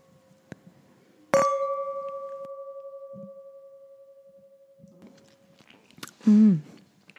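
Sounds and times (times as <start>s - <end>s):
wine glasses of Riesling clinking in a toast: 1.4s - 4.9s
speech: 6.3s - 6.7s.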